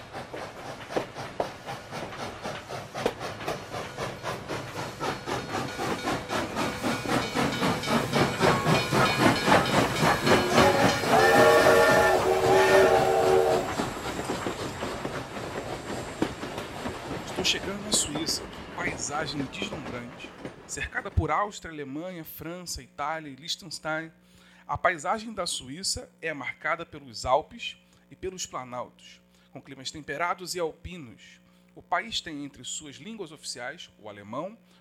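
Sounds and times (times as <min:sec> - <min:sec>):
train from Berlin to Switzerland rumbling along the rails: 0:00.0 - 0:21.4
speech: 0:19.3 - 0:34.7.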